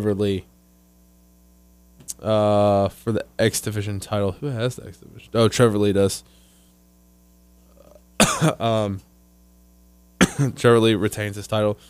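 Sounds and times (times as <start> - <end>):
speech: 0.0 - 0.5, 2.2 - 6.4, 8.2 - 9.1, 10.4 - 11.8
person coughing harshly: 7.8 - 8.8, 10.2 - 10.7.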